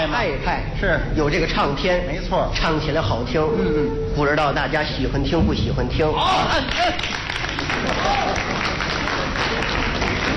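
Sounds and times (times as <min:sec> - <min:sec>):
speech: 0:00.0 - 0:07.2
one person clapping for himself: 0:06.7 - 0:10.3.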